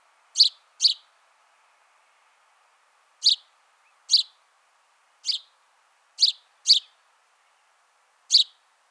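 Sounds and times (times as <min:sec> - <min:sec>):
faint background hiss: 0:00.0 - 0:08.9
house sparrow Passer domesticus chirping: 0:00.4 - 0:01.0, 0:03.2 - 0:03.5, 0:04.1 - 0:04.4, 0:05.2 - 0:05.5, 0:06.2 - 0:07.0, 0:08.3 - 0:08.6.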